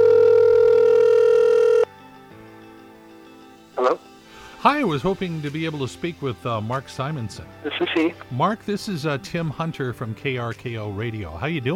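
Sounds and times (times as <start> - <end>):
telephone dial tone as a phone call is placed: 0.0 - 1.9
speech: 4.6 - 11.7.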